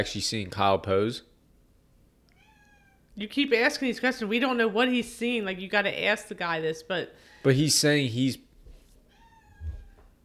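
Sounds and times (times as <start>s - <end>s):
speech: 0.0s - 1.3s, 3.2s - 8.4s
cat meowing: 2.3s - 3.1s, 9.1s - 10.1s.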